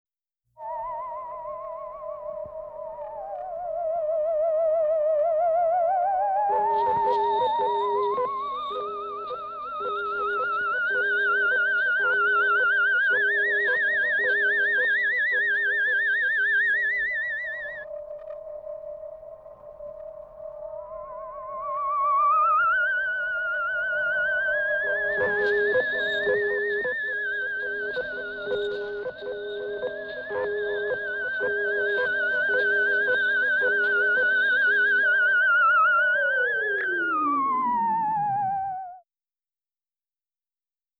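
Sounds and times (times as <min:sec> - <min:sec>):
sci-fi theremin: 0:00.6 - 0:39.0.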